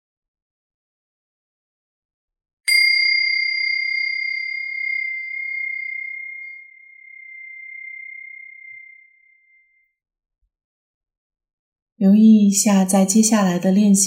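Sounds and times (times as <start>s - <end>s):
single bell ringing at the start of a class exercise: 2.7s - 8.4s
speech: 12.0s - 14.0s.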